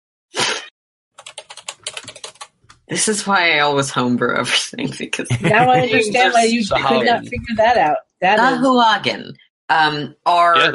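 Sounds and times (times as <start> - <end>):
typing on a computer keyboard: 1.2 - 2.6
speech: 2.9 - 10.7
laughter: 5.2 - 7.8.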